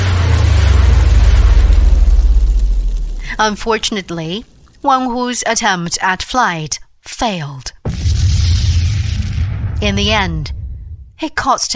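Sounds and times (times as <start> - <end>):
rockets strapped to a chair roaring: 0.0 - 5.2, 7.8 - 11.2
speech: 3.4 - 7.8, 9.8 - 10.6, 11.2 - 11.7.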